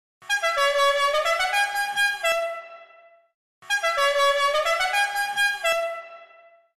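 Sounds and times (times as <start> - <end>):
high power musical air horn: 0.2 - 6.7.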